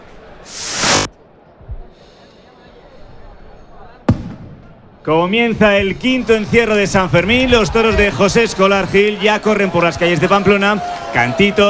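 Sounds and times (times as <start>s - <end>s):
firework rocket launching and igniting: 0.5s - 1.1s
speech: 5.0s - 11.6s.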